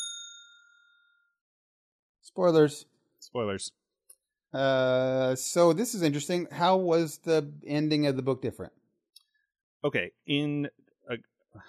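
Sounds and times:
single bright metallic bell ding: 0:00.0 - 0:01.4
speech: 0:02.3 - 0:03.8, 0:04.5 - 0:08.8, 0:09.8 - 0:11.6.

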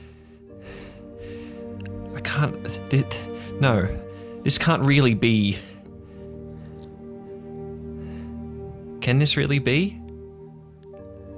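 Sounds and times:
heavy panicked breathing: 0:00.0 - 0:02.1, 0:03.2 - 0:04.6, 0:05.4 - 0:08.9
speech: 0:02.2 - 0:05.7, 0:09.1 - 0:10.0.

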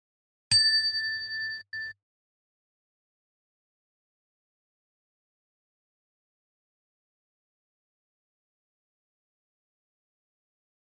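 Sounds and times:
meditation bell struck and ringing: 0:00.5 - 0:02.0.

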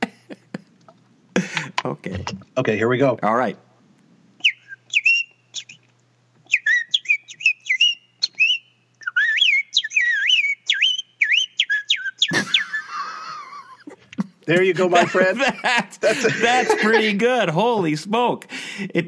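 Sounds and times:
speech: 0:01.9 - 0:03.6, 0:14.5 - 0:19.0
whistling imitating a cartoonish songbird: 0:04.4 - 0:13.0
laughter: 0:12.3 - 0:17.3.

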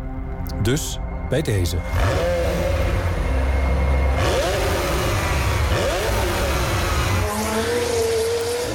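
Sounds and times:
speech: 0:00.5 - 0:02.6
warm McLaren sports car engine revving: 0:01.8 - 0:08.7.

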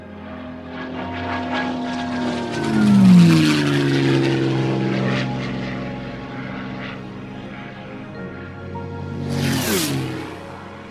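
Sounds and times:
Mustang propeller aircraft engine roar during a high-speed low pass: 0:00.0 - 0:10.8.

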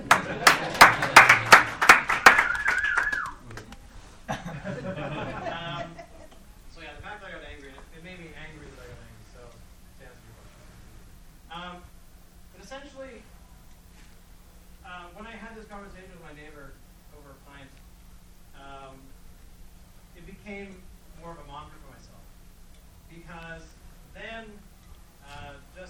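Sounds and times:
audience clapping: 0:00.0 - 0:03.9
people chuckling: 0:00.0 - 0:06.5
people talking: 0:00.0 - 0:13.6, 0:14.8 - 0:17.8, 0:18.5 - 0:19.2, 0:20.1 - 0:22.3, 0:23.1 - 0:25.8.

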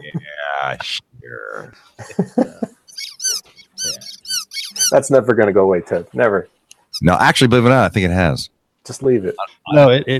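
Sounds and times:
speech: 0:00.7 - 0:02.7, 0:04.9 - 0:10.1
high-pitched squeaks: 0:02.9 - 0:05.0.

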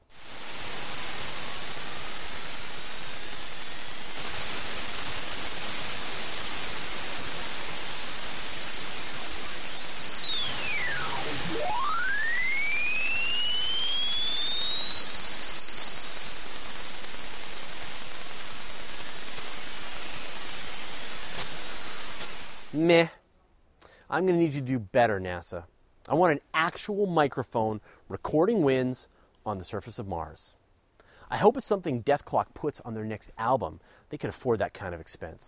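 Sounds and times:
high whistling tone recorded by a space probe instrument: 0:00.0 - 0:22.8
broadband roar recorded by a space probe entering a planet's atmosphere: 0:04.2 - 0:13.8
speech: 0:22.8 - 0:23.2, 0:24.1 - 0:30.6, 0:31.3 - 0:35.4.

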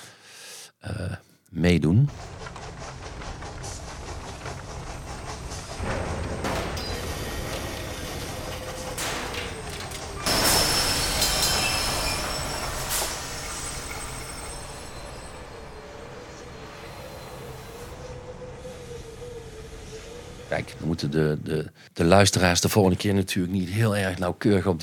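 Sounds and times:
speech: 0:00.8 - 0:02.4, 0:20.7 - 0:24.8
steam machinery with turning wheels rumbling: 0:02.1 - 0:21.5
thin metallic whine: 0:05.4 - 0:18.6.

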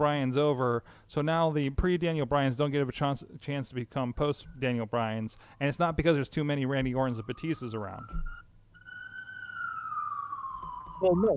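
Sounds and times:
speech: 0:00.0 - 0:08.4, 0:11.0 - 0:11.3
low rumble of traffic: 0:03.6 - 0:11.3
emergency vehicle siren wailing outside: 0:06.3 - 0:11.3.

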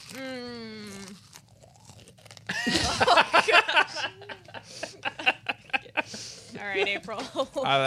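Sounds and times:
speech: 0:00.1 - 0:00.4, 0:06.6 - 0:07.8
crisp chips in mixed flavors being bitten and chewed: 0:01.1 - 0:02.6
laughter: 0:02.5 - 0:07.8.

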